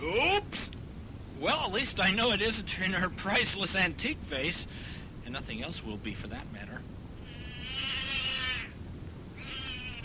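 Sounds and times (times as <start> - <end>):
speech: 1.4 - 7.0
cat yowling after being stepped on: 7.3 - 8.8, 9.4 - 10.0.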